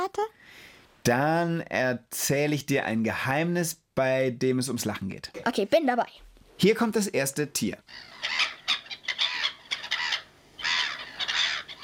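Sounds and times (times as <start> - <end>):
speech: 0.1 - 8.4
flock of black-headed gulls calling: 7.9 - 11.8.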